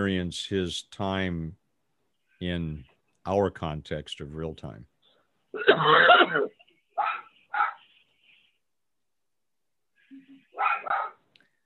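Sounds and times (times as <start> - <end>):
speech: 0.0 - 1.6, 2.4 - 4.9, 5.6 - 6.6
dog barking: 7.0 - 7.8, 10.6 - 11.2.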